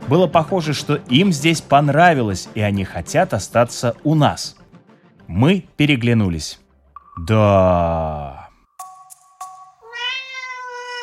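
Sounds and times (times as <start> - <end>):
speech: 0.1 - 4.6, 5.3 - 6.6, 7.2 - 8.4
cat meowing loudly behind a door: 9.8 - 11.0.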